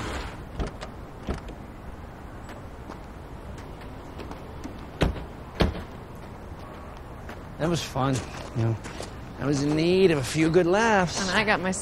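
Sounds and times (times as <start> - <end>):
car doors opening and thudding shut in a driveway: 0.0 - 1.6, 5.0 - 6.0
speech: 7.6 - 11.8.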